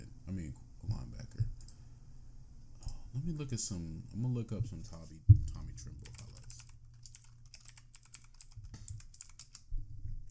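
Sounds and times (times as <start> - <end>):
low hum: 0.0 - 10.2
speech: 3.2 - 6.1
rapid irregular typing on a computer keyboard: 5.5 - 9.7.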